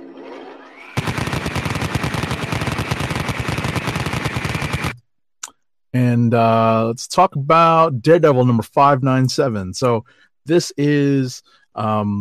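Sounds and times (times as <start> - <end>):
Vulcan rotary cannon firing: 0.7 - 5.0
speech: 6.0 - 12.1.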